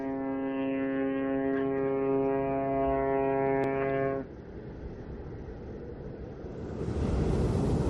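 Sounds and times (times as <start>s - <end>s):
cruise ship horn blast: 0.0s - 4.3s
waves on a calm sea in the Drake Passage: 6.5s - 7.8s.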